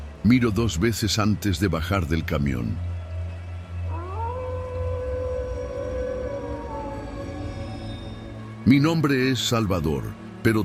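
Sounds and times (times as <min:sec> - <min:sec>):
speech: 0:00.2 - 0:02.9, 0:08.7 - 0:10.6
street dogs howling at night in Mexico City: 0:03.9 - 0:08.6.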